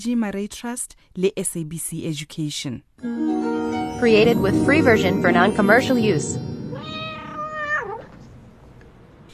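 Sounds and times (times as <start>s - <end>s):
speech: 0.0s - 6.5s
domestic cat meowing: 6.7s - 8.3s.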